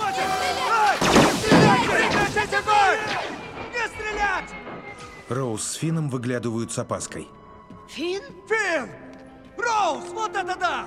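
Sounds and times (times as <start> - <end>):
blaster gunfire from rebels opening fire: 0.5 - 3.5
speech: 5.3 - 9.0, 9.8 - 10.8.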